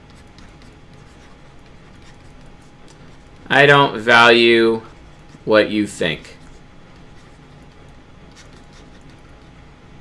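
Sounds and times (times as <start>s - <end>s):
pen scratching on paper while writing sentences by hand: 0.0s - 3.5s, 6.4s - 9.5s
speech: 3.5s - 4.9s, 5.5s - 6.4s.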